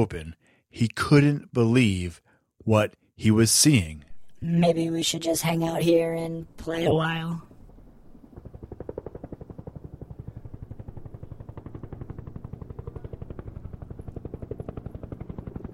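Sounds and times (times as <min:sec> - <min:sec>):
speech: 0:00.0 - 0:07.5
helicopter rotor blades beating with low engine rumble: 0:04.4 - 0:15.7.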